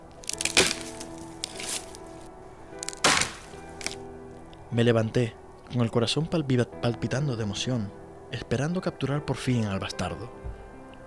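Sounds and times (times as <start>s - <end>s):
creaking in nearby trees: 0.0s - 4.0s
wood cracking and snapping in nearby trees: 0.0s - 4.1s
speech: 4.7s - 10.5s.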